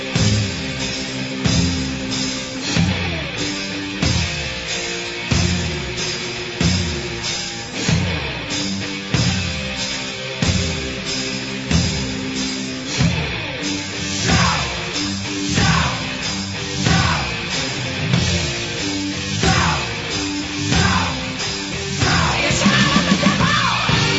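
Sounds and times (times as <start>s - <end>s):
distorted guitars in a hard rock track: 0.0s - 24.1s
pounding drums in a hard rock track: 0.0s - 24.1s
singer yelling and screaming wordless bursts: 14.2s - 17.7s, 19.3s - 24.1s.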